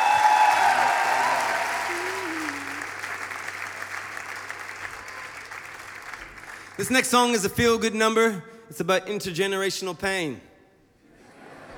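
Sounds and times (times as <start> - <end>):
audience applause at a live concert in Paris: 0.0 - 6.8
speech: 6.8 - 10.5.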